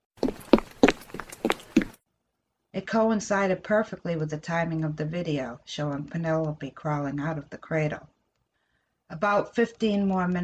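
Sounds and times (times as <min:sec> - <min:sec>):
small child's footsteps running down a hallway: 0:00.0 - 0:02.0
speech: 0:02.9 - 0:08.1, 0:09.1 - 0:10.4.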